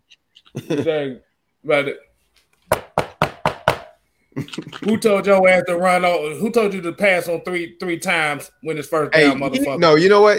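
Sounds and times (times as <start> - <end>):
speech: 0.5 - 2.1, 4.8 - 10.3
firm knocks on a door: 2.7 - 4.0.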